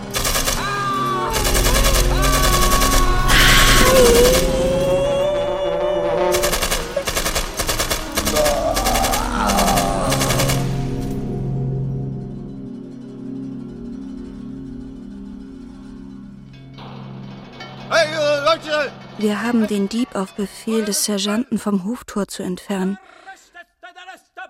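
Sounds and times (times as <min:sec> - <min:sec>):
rapid bursts of gunfire at a gate: 0:00.0 - 0:04.5, 0:06.4 - 0:11.0
sustained tonal sounds: 0:00.0 - 0:23.0
speech: 0:19.5 - 0:23.2.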